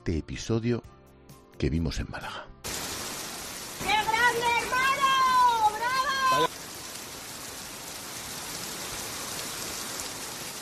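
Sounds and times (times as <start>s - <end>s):
speech: 0.1s - 1.0s, 1.6s - 2.5s
torrential rain drumming on surfaces in Málaga: 2.6s - 10.6s.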